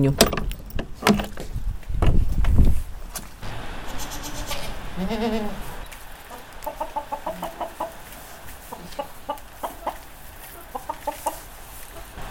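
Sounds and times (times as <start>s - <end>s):
speech: 0.0s - 0.3s, 5.1s - 5.6s
noisy outdoor background: 0.0s - 12.2s
chickens clucking: 3.8s - 12.2s.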